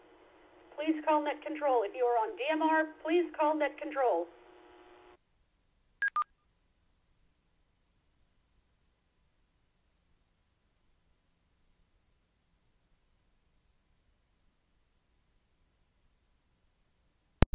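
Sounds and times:
short burst of buzzy tone: 0:00.0 - 0:05.2
speech: 0:00.8 - 0:04.4
DTMF keypad beeps entering radio codes on an amateur radio net: 0:06.0 - 0:06.3.

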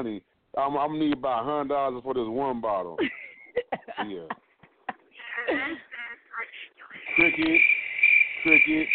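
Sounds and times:
speech: 0:00.0 - 0:04.4, 0:05.4 - 0:05.9, 0:07.1 - 0:07.8, 0:08.4 - 0:08.9
crickets chirping: 0:06.9 - 0:08.9.

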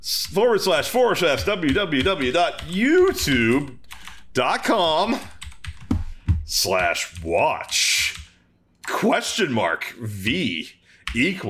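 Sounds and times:
speech: 0:00.0 - 0:03.8, 0:04.4 - 0:05.4, 0:06.5 - 0:07.9, 0:08.9 - 0:11.4
typing a web address on a computer keyboard: 0:00.3 - 0:08.4.

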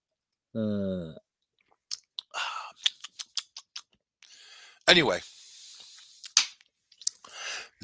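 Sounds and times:
speech: 0:00.5 - 0:01.2, 0:04.9 - 0:05.3
person humming: 0:00.6 - 0:01.2
wet mouth clicks and smacks: 0:01.6 - 0:04.0, 0:06.2 - 0:07.3.

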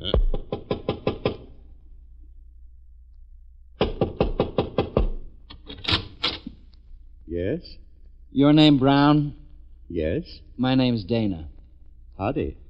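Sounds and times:
rapid firm knocking on a door: 0:00.2 - 0:01.5, 0:03.8 - 0:05.3
speech: 0:07.4 - 0:11.5, 0:12.2 - 0:12.6.

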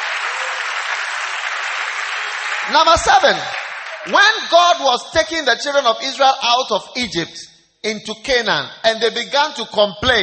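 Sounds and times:
church congregation clapping during a sermon: 0:00.0 - 0:04.8
speech: 0:02.7 - 0:10.2.

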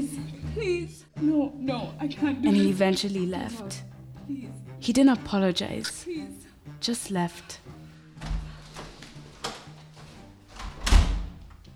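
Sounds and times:
speech: 0:00.6 - 0:07.7
door pushed shut with solid thuds: 0:10.6 - 0:11.6.

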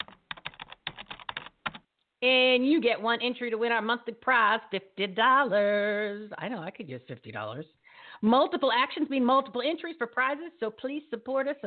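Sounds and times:
typing on a computer keyboard: 0:00.0 - 0:01.8
speech: 0:02.2 - 0:11.6.

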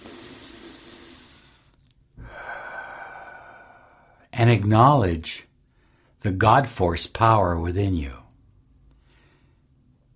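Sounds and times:
deep breath: 0:00.0 - 0:04.3, 0:05.6 - 0:06.2, 0:08.9 - 0:09.9
speech: 0:04.4 - 0:05.5, 0:06.2 - 0:08.2.

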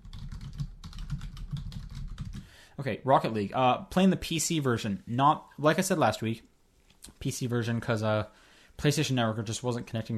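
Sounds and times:
typing on a computer keyboard: 0:00.0 - 0:02.5
speech: 0:02.8 - 0:06.5, 0:07.2 - 0:10.1.

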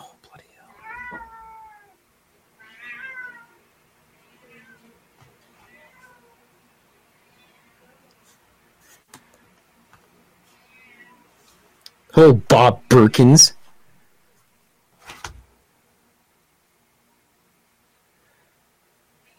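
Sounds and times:
low hum: 0:00.0 - 0:19.3
cat meowing: 0:00.7 - 0:02.0, 0:02.6 - 0:03.6, 0:04.2 - 0:04.8, 0:05.6 - 0:06.4, 0:10.6 - 0:11.3
speech: 0:12.2 - 0:13.6.

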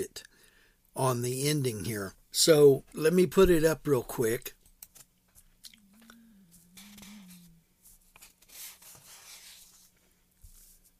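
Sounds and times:
speech: 0:00.0 - 0:00.3, 0:01.0 - 0:04.6
faint low wavering hum: 0:05.6 - 0:07.9
paper pages being turned: 0:06.8 - 0:10.9.

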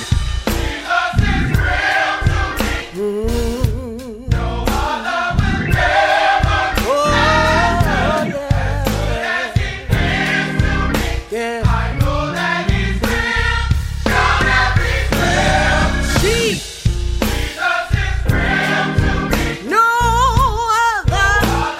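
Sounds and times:
group singing praise: 0:00.0 - 0:03.0, 0:04.3 - 0:16.7, 0:17.5 - 0:19.7, 0:21.3 - 0:21.7
soaring wavering lead voice singing: 0:00.0 - 0:16.8, 0:17.5 - 0:21.7
steady musical accompaniment: 0:00.0 - 0:21.7.

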